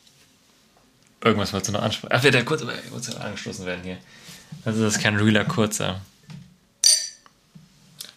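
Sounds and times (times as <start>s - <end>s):
speech: 1.2s - 6.4s
glasses clinking in a toast: 6.8s - 7.3s.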